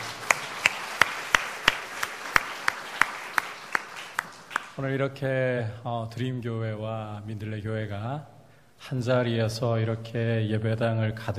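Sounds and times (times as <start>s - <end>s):
audience clapping in unison in a church: 0.0s - 4.9s
speech: 4.8s - 11.3s.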